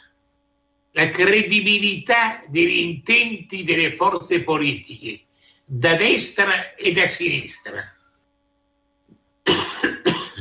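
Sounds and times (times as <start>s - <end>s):
speech: 1.0s - 8.0s
harsh coughs: 9.5s - 10.4s.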